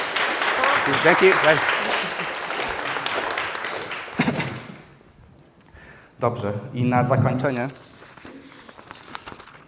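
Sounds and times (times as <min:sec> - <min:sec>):
audience applause: 0:00.0 - 0:04.7
speech: 0:00.9 - 0:01.8, 0:06.2 - 0:07.9.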